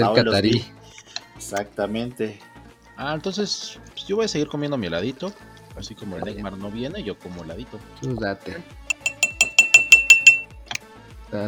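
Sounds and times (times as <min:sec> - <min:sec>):
speech: 0:00.0 - 0:00.8, 0:01.5 - 0:08.8
glass clinking like a toast: 0:08.9 - 0:10.6.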